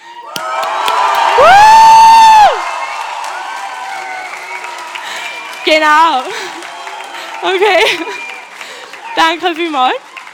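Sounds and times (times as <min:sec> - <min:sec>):
crowd cheering and whooping: 0:00.0 - 0:10.3
speech: 0:05.7 - 0:06.4, 0:07.4 - 0:08.2, 0:09.2 - 0:10.0.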